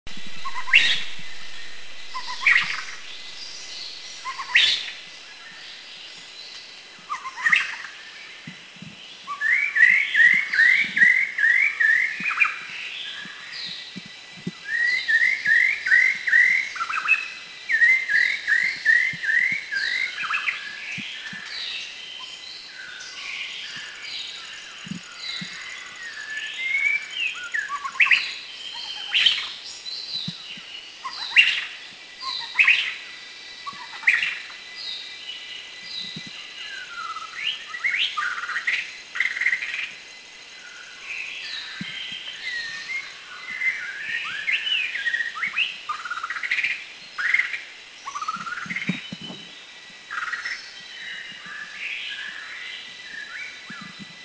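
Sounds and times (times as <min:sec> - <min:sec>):
White-rumped Shama Copsychus malabaricus singing in Krung Ching Thailand: 0:00.1 - 0:54.2.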